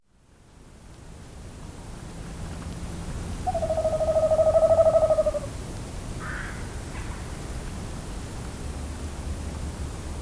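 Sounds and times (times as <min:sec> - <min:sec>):
tawny owl long quavering hoot: 0:03.4 - 0:05.6.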